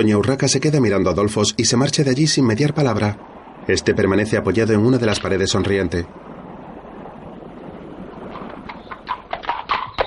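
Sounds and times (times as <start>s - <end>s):
speech: 0.0s - 6.3s
hiss: 0.0s - 10.0s
horse hooves clip-clopping as a rider arrives on horseback: 7.4s - 10.0s.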